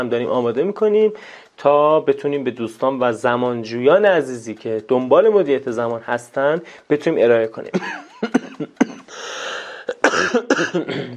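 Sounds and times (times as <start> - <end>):
speech: 0.0 - 8.9, 10.3 - 11.1
person coughing harshly: 7.8 - 9.2, 9.8 - 11.1
raspy sustained throat-clearing: 8.3 - 9.1, 9.9 - 11.1.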